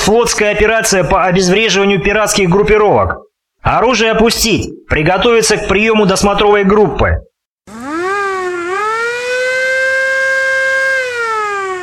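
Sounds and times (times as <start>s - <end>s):
speech: 0.1s - 7.3s
siren wailing during a naval operation against pirates: 7.7s - 11.8s.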